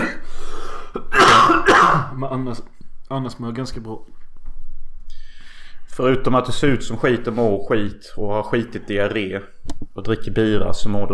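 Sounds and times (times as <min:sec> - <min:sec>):
harsh throaty coughs of an ill person: 0:00.0 - 0:02.2
speech: 0:02.2 - 0:04.2, 0:06.0 - 0:11.1.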